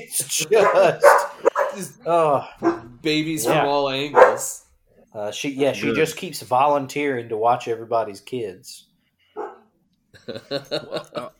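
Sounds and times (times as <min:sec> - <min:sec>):
laughter: 0:00.0 - 0:03.8, 0:10.2 - 0:11.3
speech: 0:00.0 - 0:08.9, 0:10.2 - 0:11.3
female golden retriever barking: 0:00.5 - 0:01.8, 0:02.6 - 0:04.6, 0:09.4 - 0:09.6.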